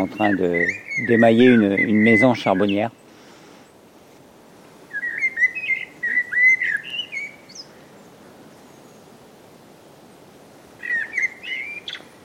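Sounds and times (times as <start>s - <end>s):
speech: 0.0s - 3.0s
bird song played through a speaker at a ringing station to lure migrating birds: 0.0s - 3.1s, 4.9s - 7.7s, 10.8s - 12.1s.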